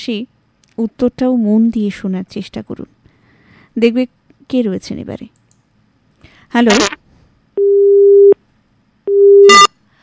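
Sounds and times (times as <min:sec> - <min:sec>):
speech: 0:00.0 - 0:03.0, 0:03.8 - 0:05.4, 0:06.5 - 0:07.0
telephone busy tone after a call is cut off: 0:07.6 - 0:08.4, 0:09.1 - 0:09.7.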